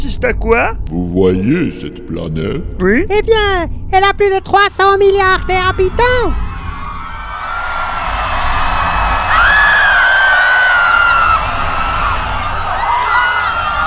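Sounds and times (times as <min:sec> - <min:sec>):
speech: 0:00.0 - 0:06.5
dense crowd crying out and screaming in panic: 0:05.4 - 0:13.8.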